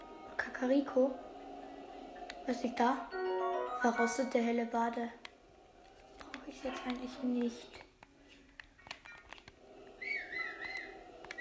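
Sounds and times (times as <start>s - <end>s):
faint hum: 0.0s - 11.3s
speech: 0.6s - 1.3s, 2.4s - 5.2s, 6.5s - 7.9s
scattered clicks: 5.2s - 11.3s
warbling whistle: 10.0s - 11.3s.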